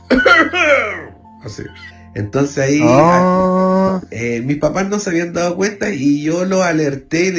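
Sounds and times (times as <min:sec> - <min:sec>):
person imitating coughing: 0:00.0 - 0:00.7
speech: 0:01.4 - 0:07.3.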